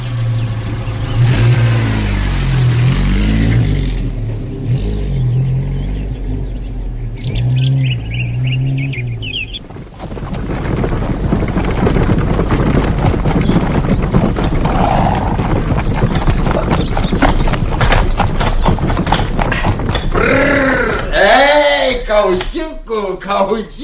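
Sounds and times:
outdoor rumbling: 0.0 - 23.8
wind: 0.0 - 23.8
horse hooves clip-clopping: 6.6 - 22.9.

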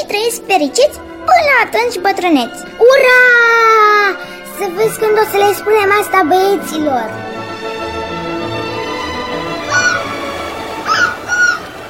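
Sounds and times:
speech: 0.1 - 7.3
seagull cries over the sea: 9.5 - 11.8.

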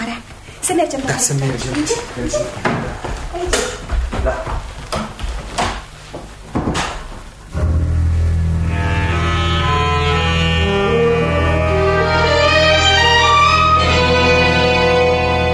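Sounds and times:
steady sustained hum or musical tone: 0.0 - 15.5
speech: 0.6 - 4.6
door opening and closing with sharp knocks and clatters: 6.6 - 7.2.

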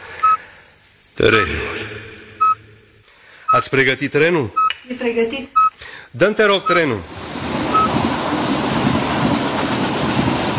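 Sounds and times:
speech: 1.2 - 2.1, 3.5 - 7.2
train rolling along the rails with a rumble: 7.0 - 10.5
train wheels clickety-clack on rails: 7.4 - 10.5.

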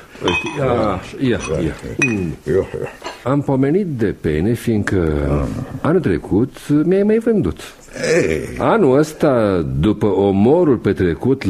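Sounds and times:
drinking glasses clinking: 0.0 - 2.4
speech: 0.2 - 11.4.

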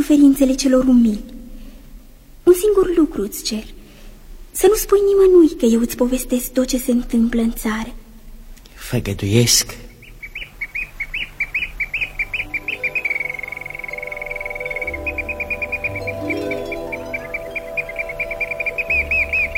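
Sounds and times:
speech: 0.0 - 1.3, 2.6 - 3.8, 4.6 - 8.0, 8.8 - 9.8
nightingale singing in chirps, whistles and trills: 9.8 - 19.5.

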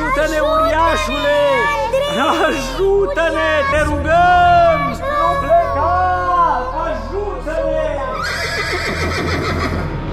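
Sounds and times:
speech: 0.2 - 10.0
horse neighing: 8.1 - 9.9.

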